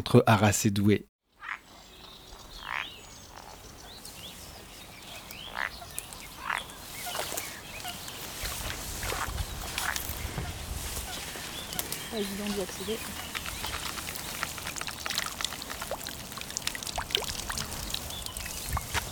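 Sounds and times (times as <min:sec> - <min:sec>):
speech: 0:00.0 - 0:01.1, 0:12.2 - 0:13.3
frogs calling from a pond at Vitré-en-Artois in Hauts-de-France: 0:02.4 - 0:03.7, 0:05.0 - 0:19.0.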